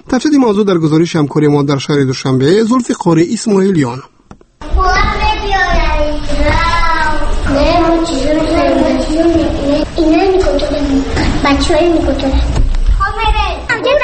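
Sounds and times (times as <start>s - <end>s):
speech: 0.1s - 4.1s, 7.6s - 12.6s
children chattering and calling out while playing in a kindergarten: 4.6s - 14.0s.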